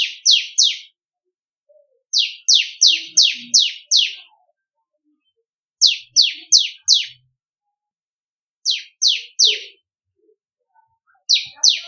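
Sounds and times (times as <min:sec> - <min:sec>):
Bar-winged prinia singing bright falling high notes: 0:02.1 - 0:04.4, 0:05.8 - 0:07.3, 0:08.7 - 0:11.8.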